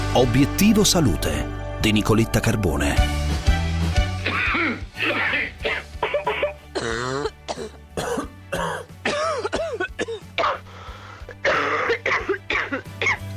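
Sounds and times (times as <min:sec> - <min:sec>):
speech: 0:00.2 - 0:03.1
person coughing: 0:04.2 - 0:13.2
throat clearing: 0:04.3 - 0:10.7, 0:11.3 - 0:13.2.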